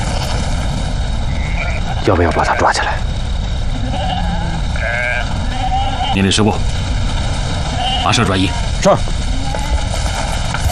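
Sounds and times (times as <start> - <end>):
constant rumble of noise: 0.0 - 10.7
flock of sheep bleating: 1.3 - 2.1, 3.7 - 6.2, 7.7 - 10.5
speech: 2.0 - 3.2, 6.1 - 6.8, 8.0 - 9.2.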